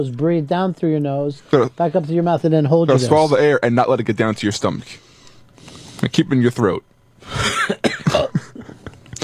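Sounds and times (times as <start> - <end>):
speech: 0.0 - 5.0, 6.0 - 8.3
person coughing: 7.3 - 9.2
throat clearing: 7.4 - 8.4.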